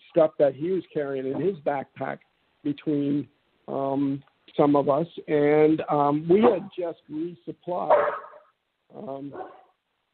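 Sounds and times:
speech: 0:00.2 - 0:08.2, 0:08.9 - 0:09.6
dog whining and barking: 0:07.9 - 0:08.5.

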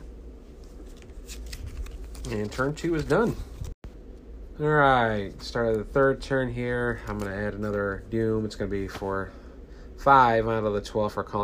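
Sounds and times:
deck of cards being shuffled: 0:00.5 - 0:03.7
speech: 0:02.2 - 0:03.6, 0:04.6 - 0:09.4, 0:10.0 - 0:11.4.

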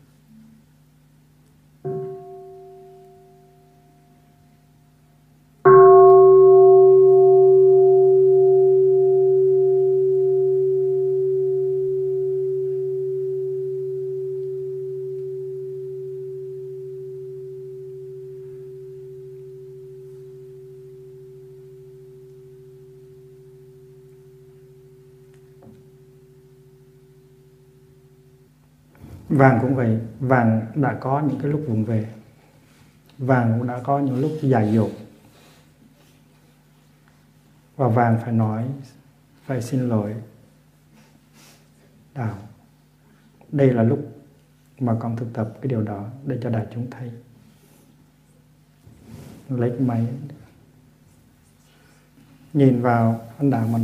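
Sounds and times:
meditation bell struck and ringing: 0:01.9 - 0:04.5, 0:05.7 - 0:28.4
speech: 0:29.4 - 0:32.2, 0:33.2 - 0:35.0, 0:37.8 - 0:40.3, 0:42.2 - 0:42.4, 0:43.5 - 0:44.1, 0:44.8 - 0:47.3, 0:49.5 - 0:50.4, 0:52.5 - 0:53.8.

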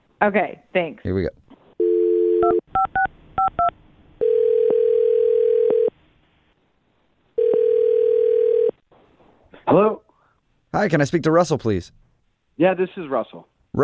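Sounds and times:
speech: 0:00.2 - 0:01.4, 0:09.7 - 0:10.0, 0:10.8 - 0:12.0, 0:12.6 - 0:13.8
telephone dial tone: 0:01.8 - 0:02.9, 0:04.2 - 0:05.9, 0:07.4 - 0:08.7.

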